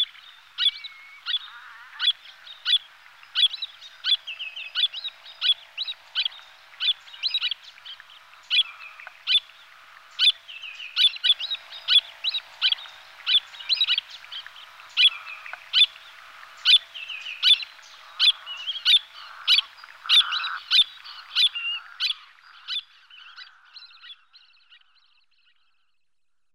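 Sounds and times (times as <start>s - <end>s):
long-billed murrelet Brachyramphus perdix chirping: 0.0s - 26.0s.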